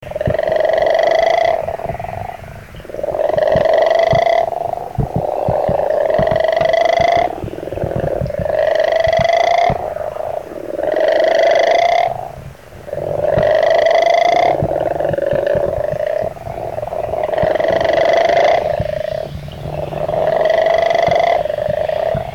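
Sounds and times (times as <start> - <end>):
Western Leopard Toad calling: 0.0 - 22.3.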